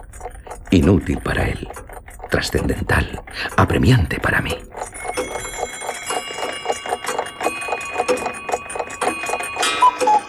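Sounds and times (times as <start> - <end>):
many clocks ticking and chiming in different tones: 0.0 - 10.2
speech: 0.1 - 4.7
ringing bell notes: 4.9 - 10.2.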